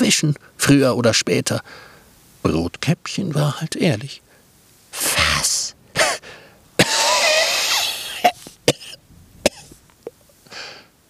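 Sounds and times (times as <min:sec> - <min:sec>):
speech: 0:00.1 - 0:04.2, 0:04.9 - 0:05.4
sharp coughs and harsh throat sounds: 0:06.0 - 0:09.8
person acting out a wolf choking with a raspy strained gasp: 0:06.2 - 0:08.5, 0:10.5 - 0:10.9.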